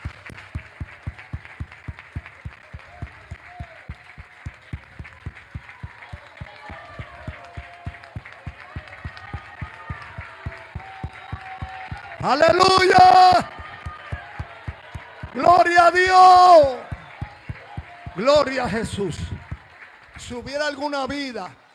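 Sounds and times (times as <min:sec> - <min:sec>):
audience clapping together in a steady fast rhythm: 0:00.0 - 0:21.7
people calling out: 0:05.7 - 0:19.6
speech: 0:12.2 - 0:13.5, 0:15.4 - 0:16.8, 0:18.2 - 0:19.2, 0:20.3 - 0:21.6.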